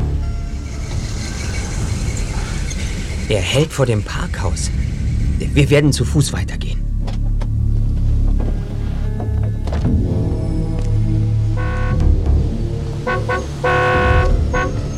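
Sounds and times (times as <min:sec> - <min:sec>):
steady low engine rumble: 0:00.0 - 0:14.9
speech: 0:03.3 - 0:06.8
car horn honking outside a parking garage and auto repair shop: 0:11.6 - 0:12.1, 0:13.0 - 0:14.9.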